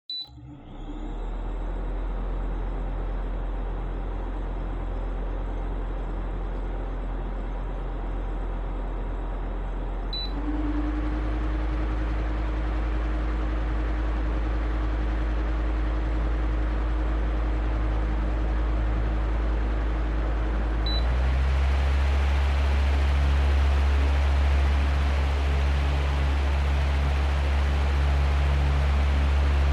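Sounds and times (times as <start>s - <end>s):
electric fan: 0.1s - 29.7s.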